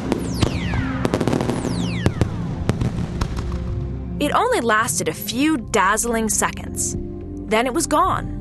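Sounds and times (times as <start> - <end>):
whistling rockets sliding downward in pitch: 0.0 - 3.5
fireworks exploding in a dense barrage: 0.0 - 3.9
speech: 4.2 - 8.3.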